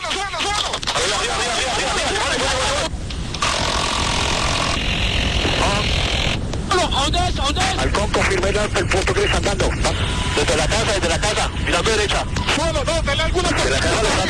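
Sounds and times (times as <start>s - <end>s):
police helicopter rotor and engine noise: 0.9s - 14.2s
speech: 8.1s - 14.2s.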